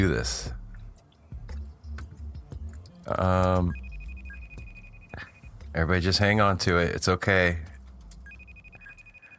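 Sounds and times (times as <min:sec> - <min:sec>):
speech: 0:00.0 - 0:00.6, 0:03.1 - 0:03.8, 0:05.8 - 0:07.7
outgoing call ringing with high electronic beeps: 0:03.6 - 0:05.7, 0:08.2 - 0:09.3.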